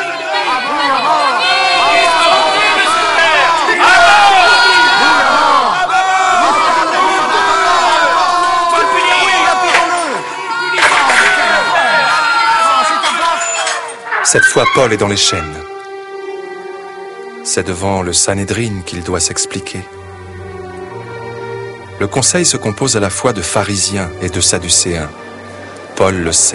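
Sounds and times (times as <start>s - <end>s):
angry crowd shouting and roaring: 0.0s - 14.1s
speech: 14.3s - 15.7s, 17.5s - 20.0s, 22.0s - 25.4s, 26.0s - 26.5s.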